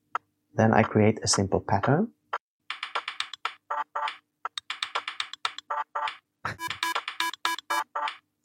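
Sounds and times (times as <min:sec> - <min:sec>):
speech: 0:00.6 - 0:02.2
sequenced beat of keyboard-like typing clicks: 0:02.7 - 0:08.4.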